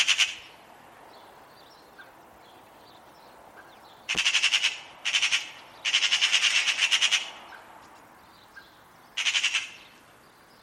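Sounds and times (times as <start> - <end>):
bird making harsh pulsed squawks: 0.0 - 0.5, 3.6 - 7.7, 8.6 - 9.9.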